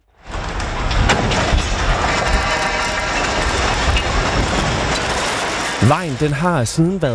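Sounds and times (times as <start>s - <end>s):
large scaffold collapsing and tearing down power lines: 0.0s - 7.1s
metallic bangs and clattering: 0.2s - 6.3s
speech: 5.8s - 7.1s.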